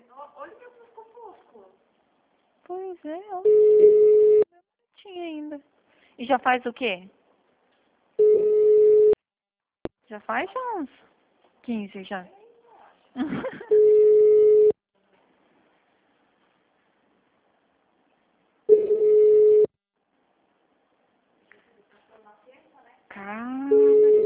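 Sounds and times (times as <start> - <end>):
speech: 2.9 - 4.0, 5.0 - 7.2, 10.1 - 11.1, 11.7 - 12.4, 13.2 - 13.7
electronic telephone ringing: 3.5 - 4.5, 8.2 - 9.2, 13.7 - 14.8, 18.7 - 19.7, 23.7 - 24.2.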